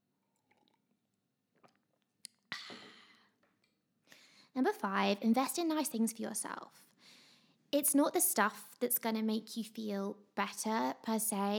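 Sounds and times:
mouth clicks and wet smacks: 0:01.6 - 0:03.0
speech: 0:04.6 - 0:06.9, 0:07.7 - 0:11.5.

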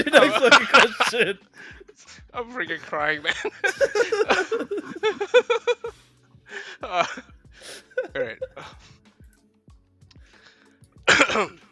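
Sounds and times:
laughter: 0:00.0 - 0:01.9, 0:03.1 - 0:06.0, 0:06.8 - 0:08.9
speech: 0:00.0 - 0:05.8, 0:06.8 - 0:08.8
loud rasping throat clearing: 0:11.1 - 0:11.7.

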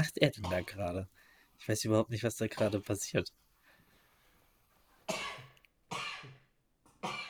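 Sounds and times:
speech: 0:00.0 - 0:03.4
person with a slight cold coughing: 0:05.1 - 0:06.4, 0:07.0 - 0:07.2.

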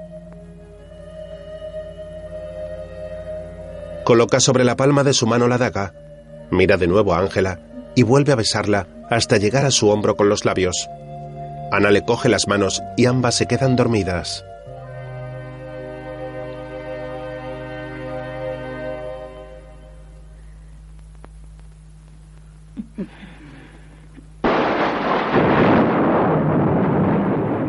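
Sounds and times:
low droning tones: 0:00.0 - 0:27.6
speech: 0:04.1 - 0:11.1, 0:11.7 - 0:14.5
faint clicks: 0:20.7 - 0:22.9
thunder crack and rumble: 0:24.4 - 0:27.6.

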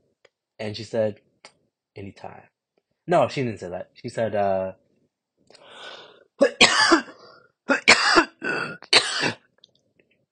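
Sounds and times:
speech: 0:00.6 - 0:01.3, 0:02.0 - 0:02.5, 0:03.1 - 0:04.8
low rasping throat clear: 0:06.4 - 0:09.4
person coughing in harsh throaty bursts: 0:06.4 - 0:09.4.

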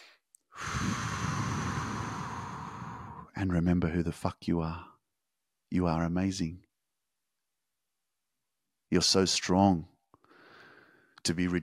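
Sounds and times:
deep breath: 0:00.0 - 0:03.4, 0:10.2 - 0:11.2
speech: 0:03.4 - 0:04.9, 0:05.7 - 0:06.6, 0:08.9 - 0:09.9, 0:11.2 - 0:11.6.

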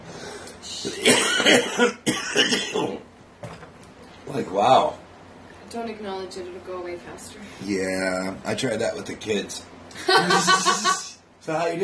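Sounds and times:
speech: 0:00.8 - 0:03.1, 0:04.3 - 0:05.0, 0:05.7 - 0:11.8
harsh coughing: 0:00.9 - 0:03.0
laughter: 0:09.9 - 0:11.2.

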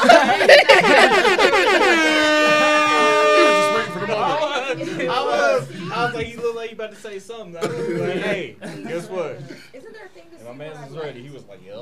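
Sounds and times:
people laughing: 0:00.0 - 0:06.7, 0:07.6 - 0:10.3
celebratory air horn blaring: 0:00.6 - 0:05.6.

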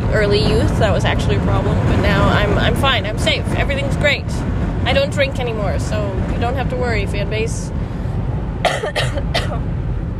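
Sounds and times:
low rumbling hum: 0:00.0 - 0:10.1
speech: 0:00.1 - 0:07.8, 0:08.6 - 0:09.8
person with a head cold coughing: 0:08.6 - 0:09.6.

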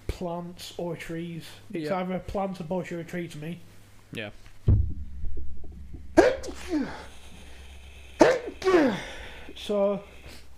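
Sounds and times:
speech: 0:00.2 - 0:04.8, 0:06.7 - 0:07.2, 0:08.6 - 0:10.4
loud sneezes with breathy vocal tail: 0:06.2 - 0:07.2, 0:08.0 - 0:09.4
low murmuring voice: 0:06.2 - 0:10.2.

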